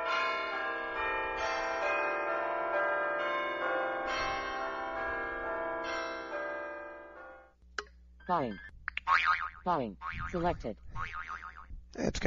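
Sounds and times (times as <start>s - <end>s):
phone ringtone imitating a bell tower peal: 0.0s - 7.5s
speech: 8.3s - 10.8s, 12.0s - 12.2s.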